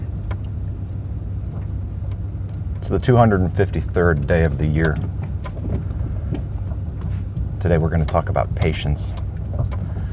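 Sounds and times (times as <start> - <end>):
truck engine rumbling while driving slowly down a driveway: 0.0 - 10.1
speech: 2.8 - 5.3, 7.6 - 9.2.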